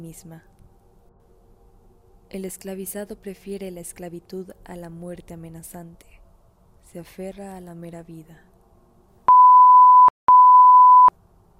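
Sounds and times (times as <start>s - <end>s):
speech: 0.0s - 0.6s, 2.3s - 6.1s, 6.8s - 8.5s
electronic beeps signalling the second call: 9.3s - 11.1s.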